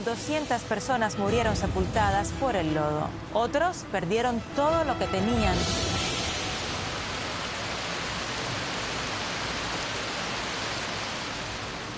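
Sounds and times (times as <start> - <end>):
speech: 0.0 - 6.0
heavy rain: 0.0 - 11.9.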